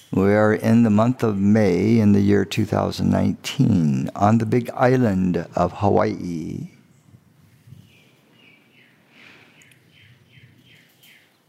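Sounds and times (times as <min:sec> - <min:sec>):
speech: 0:00.1 - 0:06.7
low outdoor rumble: 0:00.1 - 0:06.8
bird chirping: 0:06.7 - 0:11.4.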